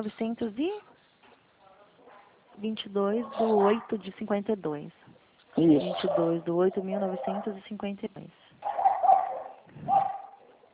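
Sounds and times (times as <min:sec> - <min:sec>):
speech: 0:00.0 - 0:01.0, 0:02.6 - 0:05.0, 0:05.6 - 0:08.7
dogs barking in the street: 0:02.0 - 0:02.4, 0:03.2 - 0:04.0, 0:05.7 - 0:07.6, 0:08.6 - 0:10.7.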